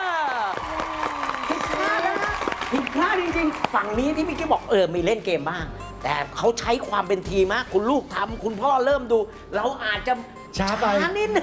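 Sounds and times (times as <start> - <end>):
excited voices cheering: 0.0 - 4.0
small group clapping: 0.0 - 4.5
speech: 2.8 - 11.4.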